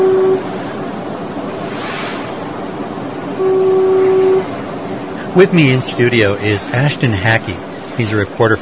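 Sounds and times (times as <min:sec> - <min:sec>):
deep steady foghorn blasts: 0:00.0 - 0:00.7, 0:03.4 - 0:04.7
constant rushing wind or surf: 0:00.4 - 0:08.5
speech: 0:05.4 - 0:08.5.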